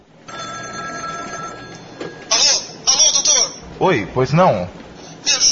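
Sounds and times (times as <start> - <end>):
telephone ringing in a doctor's home: 0.2 - 3.6
speech: 3.8 - 5.4.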